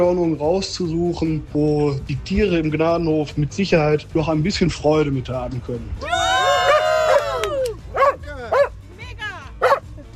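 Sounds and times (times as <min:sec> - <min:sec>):
speech: 0:00.0 - 0:06.4
dog barking and yipping in high-pitched bursts: 0:06.7 - 0:08.8, 0:09.6 - 0:09.9.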